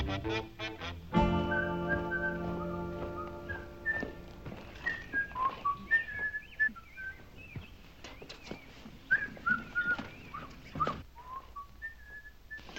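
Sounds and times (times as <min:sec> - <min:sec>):
person whistling a wandering tune: 0:01.3 - 0:07.2, 0:09.1 - 0:12.6.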